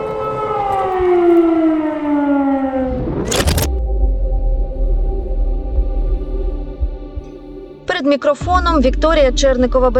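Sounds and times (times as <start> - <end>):
wartime air raid siren wailing in Kharkiv Ukraine: 0.0 - 9.7
low steady rumble: 3.4 - 9.9
speech: 8.1 - 9.9.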